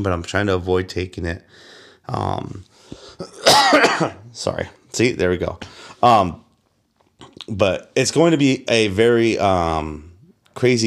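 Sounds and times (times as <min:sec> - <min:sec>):
speech: 0:00.0 - 0:06.4, 0:07.3 - 0:10.8
raspy dry cough: 0:03.2 - 0:04.3.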